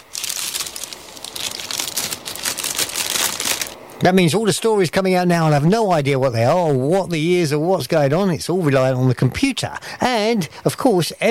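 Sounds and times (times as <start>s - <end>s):
crinkly rustling shuffle sound effect: 0.0s - 3.8s
speech: 4.0s - 11.3s.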